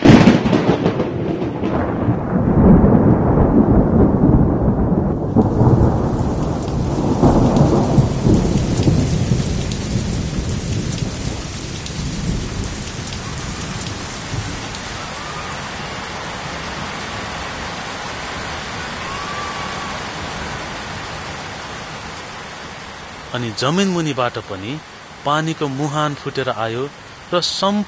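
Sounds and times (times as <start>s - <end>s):
deep rolling thunder: 0.0s - 16.9s
heavy rain pouring down: 0.0s - 27.8s
speech: 23.4s - 27.8s.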